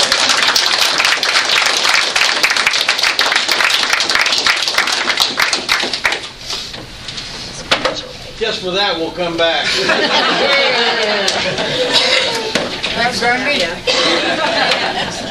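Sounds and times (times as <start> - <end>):
audience applauding in a reverberant church hall: 0.0 - 6.3
speech: 8.6 - 12.2, 13.0 - 15.2
laughter: 9.6 - 12.8, 13.9 - 15.2.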